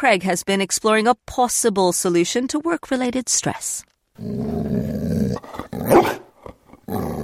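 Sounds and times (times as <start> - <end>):
speech: 0.0 - 6.2
male greyhound mix dog growling: 4.2 - 7.2
male greyhound mix dog barking: 5.9 - 6.3.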